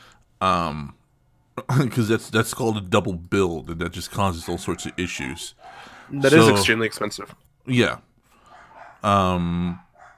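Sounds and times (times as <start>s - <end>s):
speech: 0.4s - 1.0s, 1.6s - 8.1s, 9.0s - 9.8s
dog barking: 4.4s - 6.2s, 8.5s - 9.1s, 9.7s - 10.1s.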